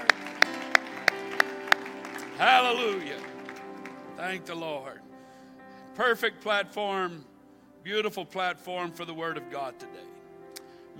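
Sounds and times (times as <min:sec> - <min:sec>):
audience clapping hands in unison: 0:00.0 - 0:04.6
soft sustained musical tone: 0:00.0 - 0:10.9
speech: 0:02.4 - 0:03.4, 0:04.2 - 0:05.0, 0:06.0 - 0:10.1.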